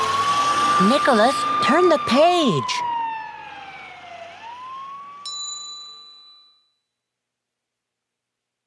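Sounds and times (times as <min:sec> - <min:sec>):
fire truck siren wailing: 0:00.0 - 0:05.3
speech: 0:00.8 - 0:02.9
bright chime ringing: 0:05.2 - 0:06.8.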